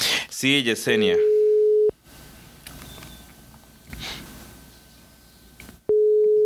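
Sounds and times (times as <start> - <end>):
speech: 0.4 - 1.3
ringback tone of an outgoing telephone call: 1.2 - 1.9, 5.9 - 6.4
faint hiss and soft rustling: 2.0 - 5.9.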